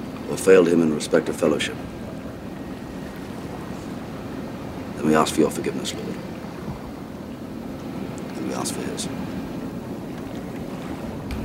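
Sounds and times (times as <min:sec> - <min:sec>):
low roar of water at sea: 0:00.0 - 0:11.4
speech: 0:00.3 - 0:02.0, 0:05.0 - 0:06.4, 0:08.6 - 0:09.4
wind rushing over a sailing ship at sea: 0:11.0 - 0:11.4.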